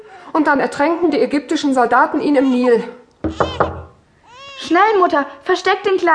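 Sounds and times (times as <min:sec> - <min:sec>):
speech: 0:00.4 - 0:03.7, 0:04.7 - 0:06.1
firm knocking on a door: 0:03.2 - 0:04.0.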